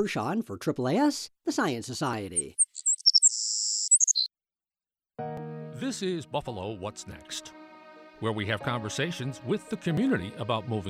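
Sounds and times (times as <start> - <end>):
speech: 0.0 - 2.6, 5.2 - 7.5, 8.2 - 10.8
songbird singing: 2.4 - 4.3.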